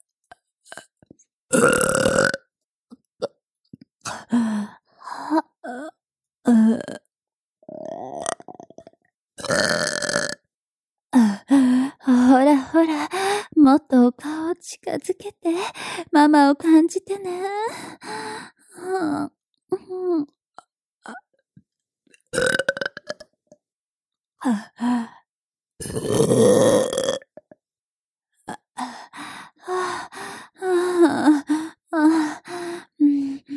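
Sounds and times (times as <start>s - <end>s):
loud drawn-out burp: 1.5s - 2.5s, 7.8s - 10.5s, 22.4s - 23.3s, 25.8s - 27.4s
breathy vocal sounds and gasps: 4.0s - 7.1s, 11.2s - 13.6s, 15.5s - 16.2s, 17.3s - 20.0s, 24.4s - 26.4s, 28.4s - 33.5s
speech: 16.2s - 18.2s.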